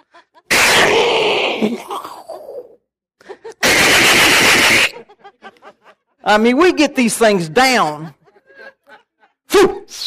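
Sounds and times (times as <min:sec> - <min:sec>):
laughter: 0:00.0 - 0:00.5, 0:03.2 - 0:06.4, 0:07.1 - 0:09.6
groaning vocal tones: 0:00.5 - 0:02.8
speech: 0:01.6 - 0:02.0, 0:06.3 - 0:08.2, 0:09.6 - 0:09.8
voice imitating machine-gun bursts: 0:03.6 - 0:05.0.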